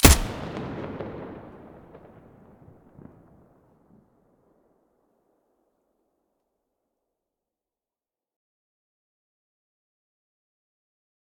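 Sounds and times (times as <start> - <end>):
HK416 rifle muzzle blast: 0.0 - 1.4.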